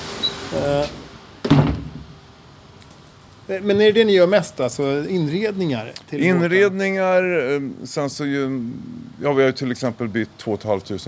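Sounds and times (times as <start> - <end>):
speech: 0.5 - 1.0, 3.5 - 11.0
door shutting with a thud: 1.4 - 2.2.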